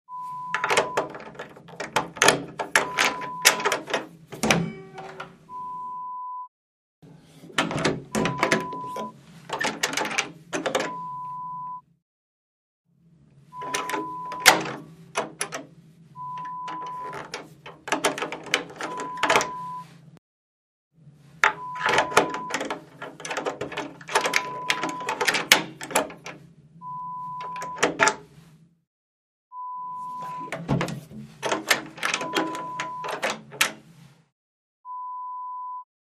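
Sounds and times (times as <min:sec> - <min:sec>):
door key: 0:00.5 - 0:05.4, 0:07.6 - 0:11.0, 0:13.6 - 0:15.7, 0:16.4 - 0:19.5, 0:21.4 - 0:26.4, 0:27.4 - 0:28.2, 0:30.4 - 0:33.8.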